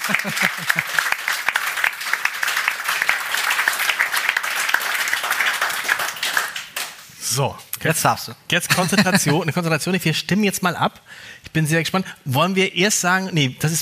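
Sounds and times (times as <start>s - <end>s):
laughter: 0.0s - 1.2s, 8.7s - 9.5s
crowd applauding: 0.0s - 7.1s
speech: 0.1s - 1.3s, 7.4s - 13.7s.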